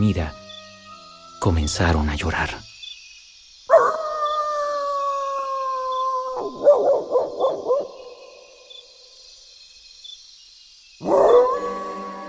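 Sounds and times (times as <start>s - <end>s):
speech: 0.0s - 0.4s, 1.4s - 2.7s
steady high chirr of night insects: 0.0s - 12.2s
dogs howling at night: 3.7s - 8.0s, 11.0s - 12.2s.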